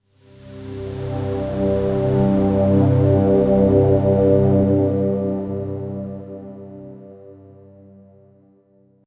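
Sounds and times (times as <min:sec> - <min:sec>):
synthwave outrun synth pad: 0:00.3 - 0:07.0.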